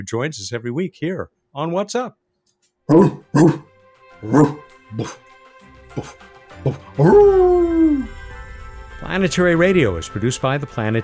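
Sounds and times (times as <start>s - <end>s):
speech: 0.0s - 2.2s, 2.9s - 5.3s, 6.0s - 8.2s, 9.0s - 11.0s
dog barking: 2.9s - 3.6s, 4.2s - 5.2s, 6.0s - 8.1s.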